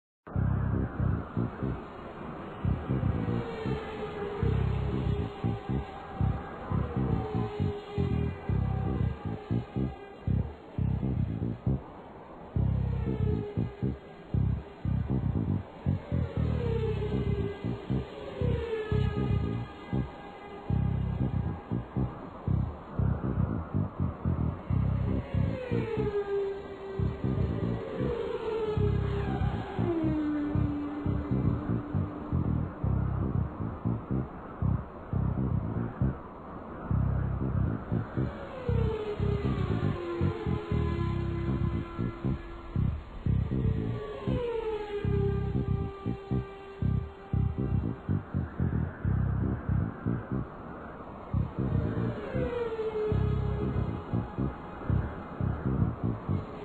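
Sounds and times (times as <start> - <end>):
raceway ambience: 0.3 - 56.6.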